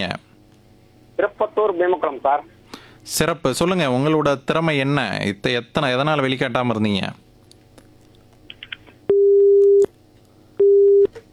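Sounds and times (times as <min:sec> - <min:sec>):
speech: 0:00.0 - 0:00.3, 0:01.2 - 0:07.2
phone line busy tone after a call is disconnected: 0:09.1 - 0:09.9, 0:10.6 - 0:11.1.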